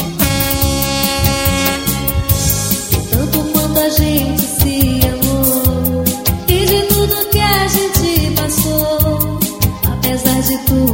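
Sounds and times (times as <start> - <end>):
truck air horn blaring: 0.0 - 3.0
rhythmic thumping beat: 0.0 - 10.1
speech: 3.9 - 4.5.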